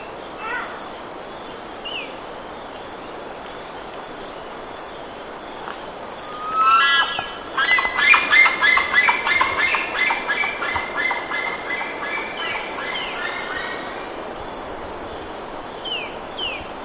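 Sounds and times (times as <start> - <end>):
steady hiss: 0.0 - 16.8
bird chattering chirps: 6.5 - 13.4.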